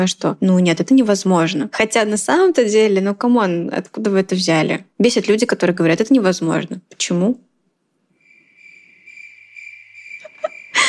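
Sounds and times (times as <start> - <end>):
speech: 0.0 - 7.5
lone cricket chirping: 8.1 - 10.8.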